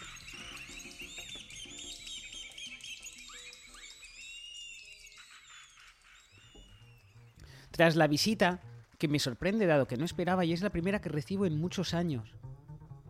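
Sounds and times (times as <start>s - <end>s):
chorus of many birds chirping and whistling: 0.0s - 7.7s
speech: 7.8s - 12.5s.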